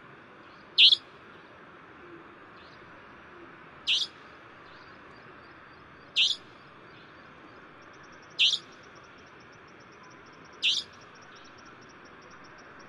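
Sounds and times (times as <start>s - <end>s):
Savanna nightjar calling: 0.8s - 1.0s, 3.9s - 4.2s, 6.2s - 6.4s, 8.4s - 8.7s, 10.6s - 10.9s.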